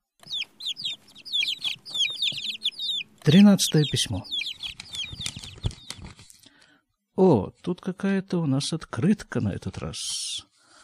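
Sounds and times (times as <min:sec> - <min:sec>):
chickens clucking and peeping: 0:00.2 - 0:06.2
speech: 0:03.2 - 0:04.5, 0:07.2 - 0:10.5.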